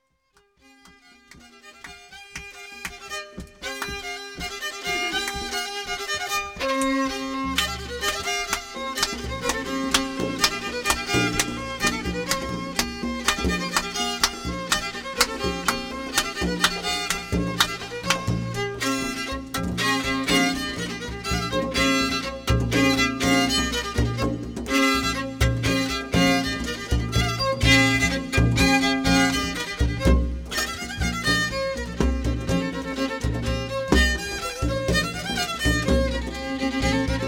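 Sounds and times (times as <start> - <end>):
fiddle: 0.0 - 37.2
drum: 1.4 - 37.2.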